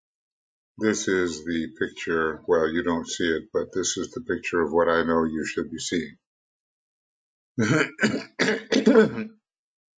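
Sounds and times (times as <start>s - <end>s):
speech: 0.8s - 6.2s, 7.6s - 9.4s
person clearing throat: 7.6s - 9.3s
person coughing: 7.6s - 9.3s.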